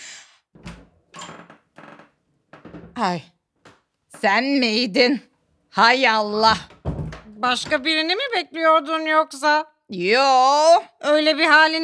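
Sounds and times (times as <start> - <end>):
wooden door opening with thumps and rattles: 0.6 - 4.6, 6.3 - 8.1
speech: 3.0 - 3.3, 4.2 - 6.7, 7.4 - 11.8.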